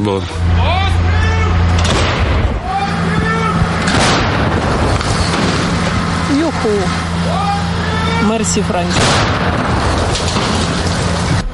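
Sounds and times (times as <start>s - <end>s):
speech: 0.0s - 0.7s, 6.6s - 7.1s, 8.2s - 10.3s
outdoor noise: 0.0s - 11.5s
heavy artillery gun blasts from an army gun crew: 1.7s - 2.6s, 3.6s - 6.2s, 8.9s - 11.4s.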